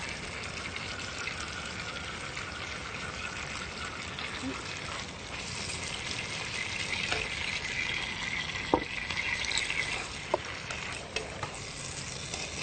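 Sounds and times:
Thai basil stir-frying in a hot pan: 0:00.0 - 0:12.6
utensil scraping a pan: 0:09.5 - 0:12.6.

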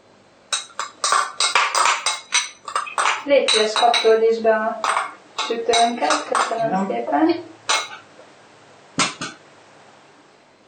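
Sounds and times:
oil and finely diced onion going into a pan, clattering knocks against cookware: 0:00.5 - 0:04.2, 0:04.8 - 0:06.9, 0:07.7 - 0:08.0, 0:09.0 - 0:09.4
speech: 0:03.2 - 0:04.9, 0:05.5 - 0:07.5.

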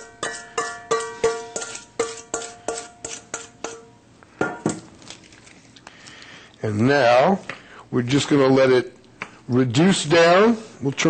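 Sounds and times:
metal utensil tapping against cookware as marinade is added to a sauté pan: 0:00.0 - 0:03.9
speech: 0:06.6 - 0:11.0.

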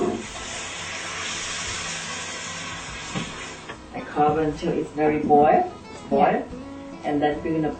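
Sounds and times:
tomatoes sizzling in a hot pan with cooked ham: 0:00.0 - 0:04.8
speech: 0:04.2 - 0:07.7.

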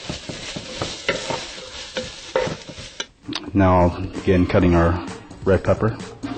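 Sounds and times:
utensil scraping strokes while stirring green peppers in a pan: 0:00.0 - 0:03.1
green peppers sizzling as they fry in a pan: 0:00.0 - 0:03.2
speech: 0:03.6 - 0:06.2.

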